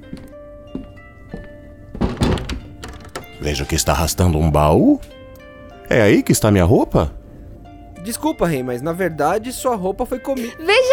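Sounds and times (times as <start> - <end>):
soft knocks of a door being pushed: 1.9 - 3.4
speech: 3.4 - 5.2, 5.9 - 7.2, 8.0 - 10.9.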